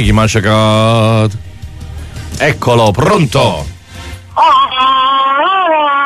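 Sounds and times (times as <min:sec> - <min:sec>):
speech: 0:00.0 - 0:01.5, 0:02.4 - 0:03.7
caller on a phone line imitating a jungle yodel yell: 0:04.4 - 0:06.0.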